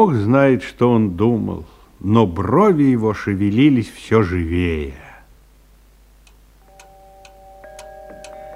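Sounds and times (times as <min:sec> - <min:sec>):
speech: 0:00.0 - 0:05.0
musical clock ticking in a house: 0:06.2 - 0:08.5
musical clock chime tones: 0:06.6 - 0:08.5.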